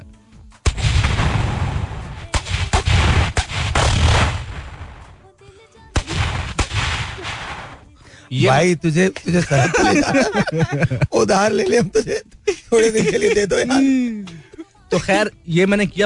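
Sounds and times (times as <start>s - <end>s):
voice imitating gunshots by mouth into a microphone: 0.7s - 5.0s, 5.9s - 7.9s
speech: 8.3s - 16.0s
laughter: 9.2s - 15.1s.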